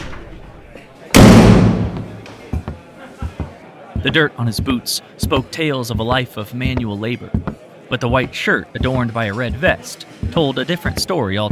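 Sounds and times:
tavern door flung open with a bang: 0.0 - 2.3
faint murmur of conversation and laughter: 2.2 - 10.5
speech: 4.0 - 11.5.

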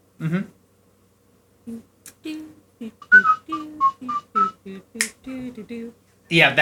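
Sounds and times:
person whistling a bouncy short-noted tune: 3.0 - 4.6
sharp finger snaps: 4.4 - 5.2.

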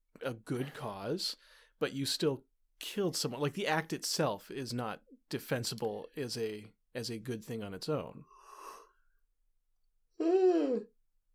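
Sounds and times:
speech: 0.2 - 8.6
breathy exhale: 8.2 - 9.1
person yawning: 10.2 - 11.0.

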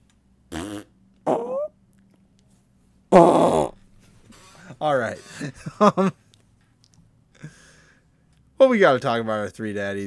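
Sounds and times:
farts: 0.5 - 1.7, 3.1 - 3.8
laughter: 4.3 - 6.2
speech: 4.8 - 6.2, 8.7 - 10.0.

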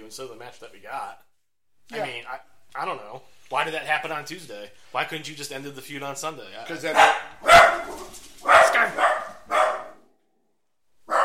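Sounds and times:
speech: 0.1 - 1.3, 1.9 - 9.0
dog barking excitedly: 6.8 - 10.1, 11.0 - 11.2.

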